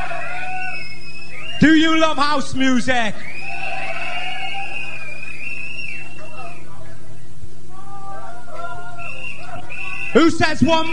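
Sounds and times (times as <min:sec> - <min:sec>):
crowd at a house music event whooping: 0:00.0 - 0:01.8, 0:03.2 - 0:06.6, 0:07.7 - 0:10.9
dense steady roar of cheering: 0:00.0 - 0:02.4, 0:03.0 - 0:06.9, 0:07.7 - 0:10.9
shrill sliding whistles from a crowd at a house music event: 0:00.2 - 0:01.7, 0:03.2 - 0:06.6, 0:09.0 - 0:10.9
speech: 0:01.6 - 0:03.3, 0:10.1 - 0:10.9.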